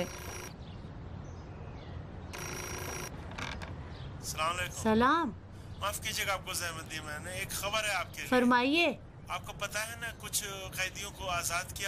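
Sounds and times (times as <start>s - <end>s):
speech: 0.0s - 0.3s, 4.3s - 11.8s
telephone ringing in a home with a buzzy electronic tone: 0.0s - 0.7s, 2.3s - 3.8s.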